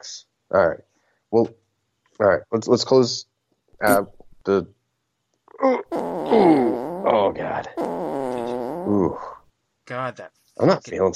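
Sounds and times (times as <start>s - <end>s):
speech: 0.0s - 1.6s, 2.2s - 4.8s, 5.6s - 8.2s, 8.9s - 11.1s
buzzy fart wavering in pitch: 3.8s - 4.1s, 5.8s - 9.4s.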